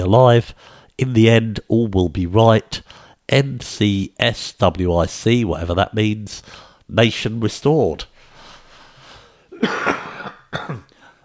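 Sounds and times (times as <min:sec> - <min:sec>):
speech: 0:00.0 - 0:08.1, 0:09.6 - 0:10.8
person coughing: 0:09.5 - 0:11.0
throat clearing: 0:09.6 - 0:11.0.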